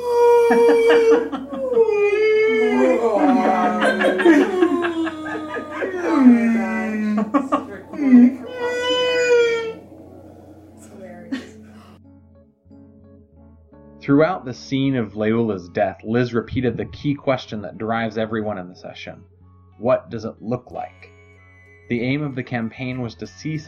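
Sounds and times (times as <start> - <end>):
people chuckling and laughing: 0.0 - 9.9, 11.2 - 12.0
voices imitating whale song: 0.0 - 10.8
speech: 0.5 - 2.1, 3.9 - 4.8, 14.1 - 21.1, 21.9 - 23.6.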